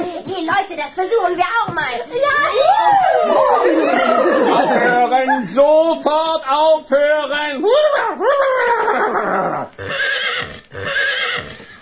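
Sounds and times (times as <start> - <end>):
speech: 0.5 - 10.1
laughter: 2.3 - 6.0, 7.6 - 9.8
horse neighing: 8.8 - 11.8.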